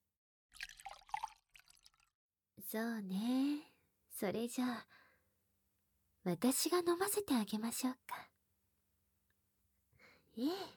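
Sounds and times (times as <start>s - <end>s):
drink pouring into a cup: 0.6s - 2.1s
speech: 2.7s - 5.0s, 6.2s - 8.3s, 10.4s - 10.7s.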